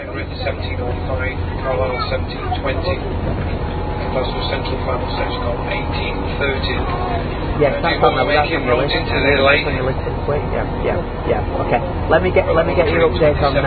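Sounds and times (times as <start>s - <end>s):
low rumble of moving train: 0.0s - 13.6s
tinny public-address announcement on a train: 0.0s - 13.6s
speech: 0.2s - 13.6s.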